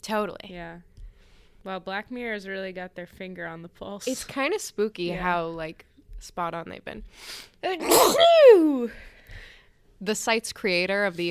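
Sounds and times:
speech: 0.0 - 0.9, 1.6 - 9.1, 10.0 - 11.2
single loud sneeze with a voiced cry: 7.8 - 8.7.

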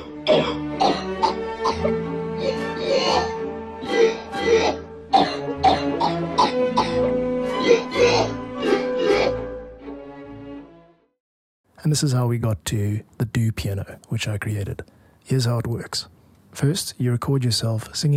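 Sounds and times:
cough samples played on a keyboard as a waltz melody: 0.0 - 9.7
speech: 11.9 - 18.1.

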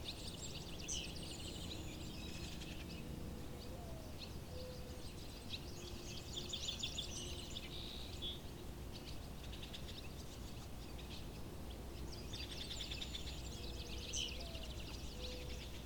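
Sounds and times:
barn swallows twittering at a pond: 0.0 - 15.8
low background noise: 0.0 - 15.8.

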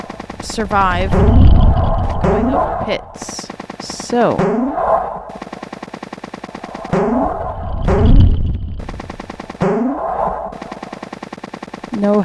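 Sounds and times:
cannon fire in a platform video game: 0.0 - 11.2
deep rumbling blast: 0.2 - 3.2, 7.1 - 9.0
speech: 0.5 - 5.1, 12.0 - 12.2.

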